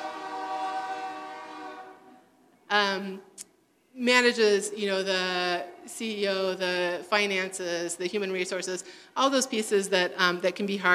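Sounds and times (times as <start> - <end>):
train horn blaring: 0.0 - 2.3
speech: 2.7 - 10.9.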